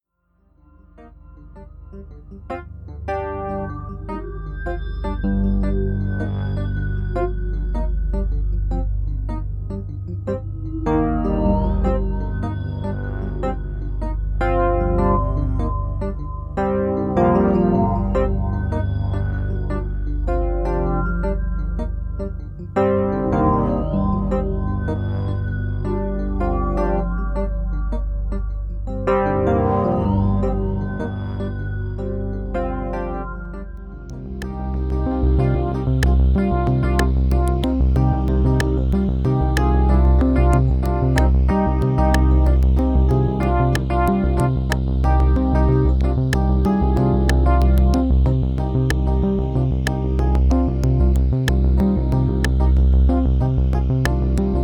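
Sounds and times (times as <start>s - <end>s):
Roland JD800 synthesizer and Roland RD1000 digital piano: 0.4s - 54.6s.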